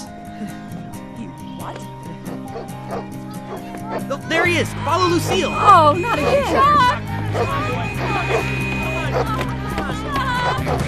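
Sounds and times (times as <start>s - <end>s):
speech: 0.4s - 0.8s, 4.1s - 9.4s, 10.5s - 10.8s
laughter: 0.4s - 10.8s
large dog barking: 2.3s - 4.2s, 5.3s - 9.5s.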